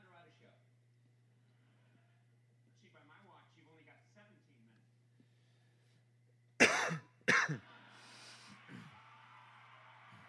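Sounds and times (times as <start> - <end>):
faint low hum: 0.0 - 10.2
person coughing into the microphone: 6.6 - 7.6.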